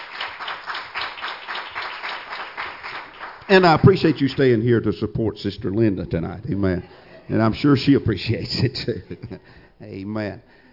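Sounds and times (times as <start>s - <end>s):
church audience clapping in praise: 0.0s - 4.5s
speech: 3.5s - 10.6s.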